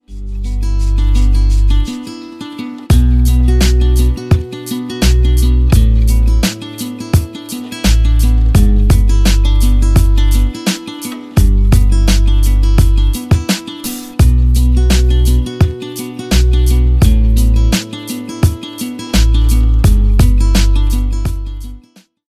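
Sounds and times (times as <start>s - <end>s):
guitar melody: 0.0s - 22.0s.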